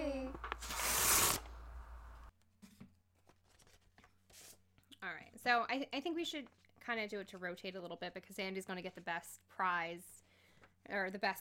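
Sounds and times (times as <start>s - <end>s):
envelope torn open with a rough paper rip: 0.4s - 1.5s
paper rustling: 0.4s - 1.5s, 2.5s - 4.8s
speech: 5.4s - 10.2s, 10.8s - 11.3s.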